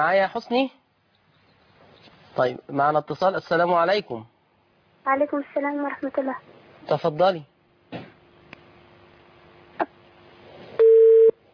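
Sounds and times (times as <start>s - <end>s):
speech: 0.0s - 0.8s, 2.4s - 4.3s, 5.0s - 8.0s
low steady hum: 0.0s - 11.5s
telephone busy tone after a caller's line drops: 10.8s - 11.3s.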